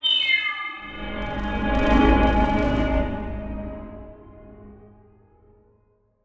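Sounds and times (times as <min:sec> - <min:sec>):
short evolving title transition production element: 0:00.8 - 0:04.7.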